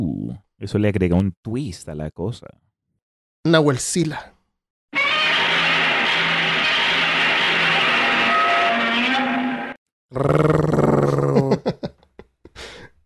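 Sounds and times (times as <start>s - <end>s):
speech: 0.0s - 2.7s, 3.4s - 4.4s, 10.1s - 11.8s
giant monster roar: 5.0s - 11.4s
laughter: 11.1s - 12.2s.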